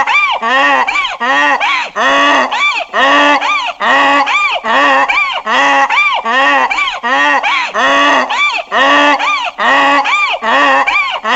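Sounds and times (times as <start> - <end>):
donkey braying: 0.0 - 11.3.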